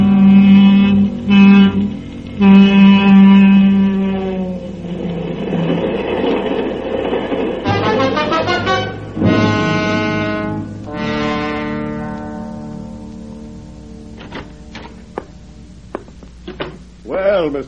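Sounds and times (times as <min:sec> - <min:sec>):
train horn blasts: 0:00.0 - 0:05.3, 0:07.6 - 0:15.7
train rolling along the rails: 0:00.0 - 0:17.1.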